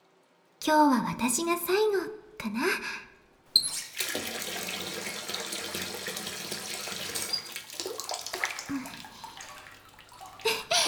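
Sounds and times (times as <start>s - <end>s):
speech: 0.6s - 4.3s
tap water running into a bathtub filling a lukewarm bath: 3.6s - 10.8s.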